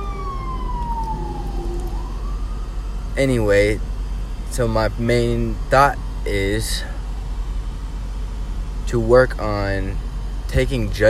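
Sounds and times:
ambulance siren wailing as it passes: 0:00.0 - 0:08.2
constant low rumble of traffic: 0:00.0 - 0:11.0
speech: 0:03.2 - 0:03.9, 0:04.5 - 0:06.9, 0:08.9 - 0:11.0.

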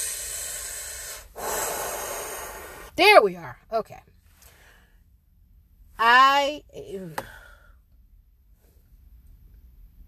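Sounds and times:
deep breath drawn in and let out: 0:00.0 - 0:02.9, 0:04.4 - 0:05.1, 0:07.2 - 0:07.8
speech: 0:03.0 - 0:04.1, 0:06.0 - 0:07.4.

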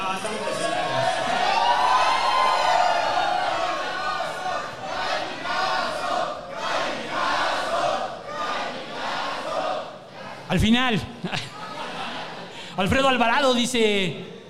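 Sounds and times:
large audience shouting a group battle cry: 0:00.7 - 0:10.5
speech: 0:10.5 - 0:11.5, 0:12.8 - 0:14.4
laughter: 0:11.0 - 0:12.8.

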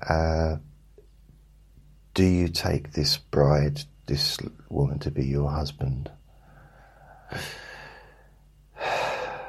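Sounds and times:
speech: 0:00.1 - 0:00.4, 0:02.2 - 0:06.2, 0:07.3 - 0:07.6
person breathing in: 0:06.4 - 0:09.4.

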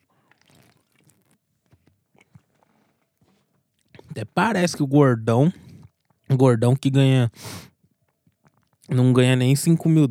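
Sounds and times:
person with a dry throat gulping water: 0:00.0 - 0:04.2, 0:05.5 - 0:06.4, 0:07.8 - 0:09.0
speech: 0:04.2 - 0:05.6, 0:06.3 - 0:07.7, 0:08.9 - 0:10.0.

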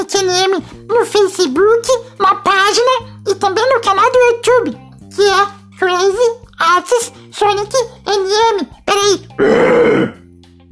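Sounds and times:
speech: 0:00.0 - 0:10.2
loud gravelly throat clearing: 0:09.4 - 0:10.2.

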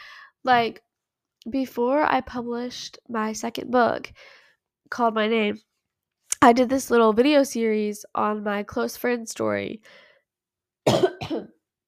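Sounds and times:
speech: 0:00.4 - 0:05.7, 0:06.4 - 0:10.0
person coughing: 0:10.9 - 0:11.6.

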